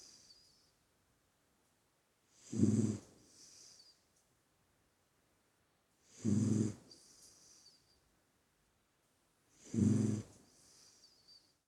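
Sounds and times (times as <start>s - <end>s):
dog snoring: 2.3s - 3.8s, 6.0s - 7.1s, 9.5s - 11.0s.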